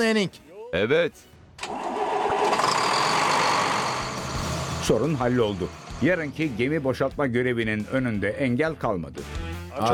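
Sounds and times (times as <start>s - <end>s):
speech: 0.0s - 1.7s, 4.8s - 9.9s
starter motor cranking an engine after a loose spark plug cable was refitted: 1.6s - 6.3s.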